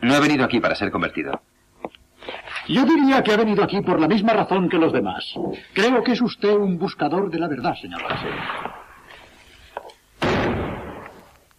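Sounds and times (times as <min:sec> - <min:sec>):
speech: 0:00.0 - 0:02.0, 0:02.7 - 0:08.8
door slammed shut: 0:08.0 - 0:08.8, 0:10.2 - 0:11.2.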